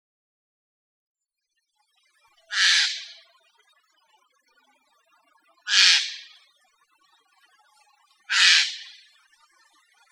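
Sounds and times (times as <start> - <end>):
Eurasian jay Garrulus glandarius screeching: 2.5 - 3.2, 5.7 - 6.3, 8.3 - 8.9.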